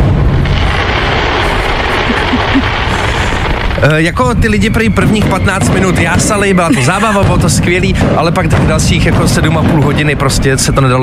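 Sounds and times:
fireworks exploding beneath the windows around a house: 0.0 - 11.0
laughter: 1.7 - 3.4, 6.6 - 7.4
speech: 3.8 - 11.0.

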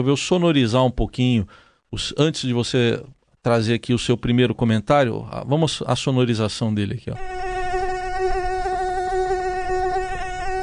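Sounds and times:
speech: 0.0 - 7.5
mosquito buzzing: 7.2 - 10.6.

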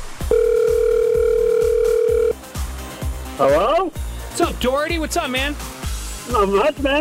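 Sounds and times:
telephone dial tone as a call is placed: 0.3 - 2.4
speech: 3.4 - 3.7, 4.6 - 6.9.

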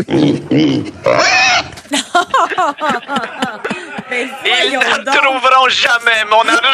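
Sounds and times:
speech: 0.0 - 1.4, 2.2 - 6.7
pig squealing, oinking and snorting: 0.0 - 1.8
laughter: 1.8 - 6.7.

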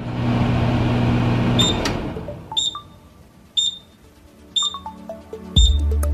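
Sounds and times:
microwave oven humming: 0.0 - 4.0
microwave oven high evenly spaced beeps: 1.6 - 6.0.

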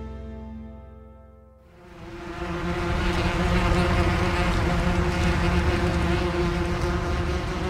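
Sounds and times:
wasps buzzing: 1.8 - 7.6.

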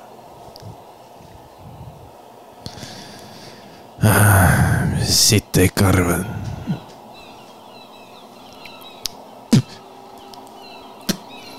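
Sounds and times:
speech: 4.0 - 6.8
seagulls calling: 6.3 - 11.5.

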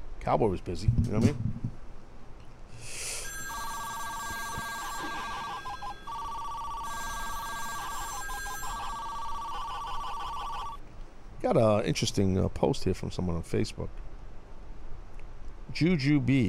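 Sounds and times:
speech: 0.2 - 1.5, 11.4 - 14.0, 15.8 - 16.4
telephone ringing with a warbling electronic trill: 3.1 - 10.8.

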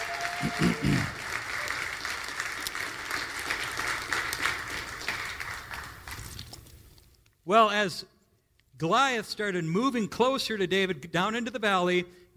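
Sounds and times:
room full of people applauding: 0.0 - 6.6
brief vocal bursts: 0.4 - 1.2
speech: 0.4 - 1.2, 7.5 - 8.1, 8.8 - 12.3.

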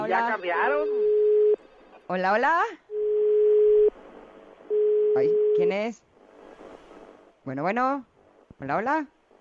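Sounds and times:
speech: 0.1 - 1.2, 2.1 - 2.8, 5.2 - 6.0, 7.4 - 9.2
telephone line tone during a phone-in call: 2.9 - 3.9, 4.7 - 5.6.

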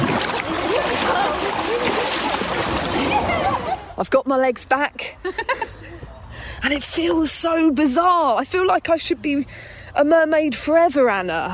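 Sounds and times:
water splashing and churning in a pool: 0.0 - 4.0
speech: 4.0 - 5.8, 6.6 - 11.5.

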